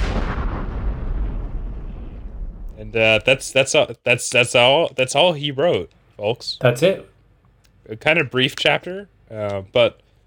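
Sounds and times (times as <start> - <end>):
bridge explosion with deep booming rumble: 0.0 - 3.5
debris crackle: 0.0 - 3.5
speech: 2.8 - 7.1, 7.9 - 10.0.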